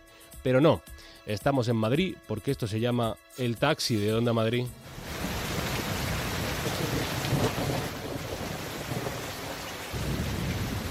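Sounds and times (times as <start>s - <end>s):
speech: 0.4s - 4.8s
low thunder rumbling: 4.8s - 10.8s
steady dense rain pouring: 4.8s - 10.8s.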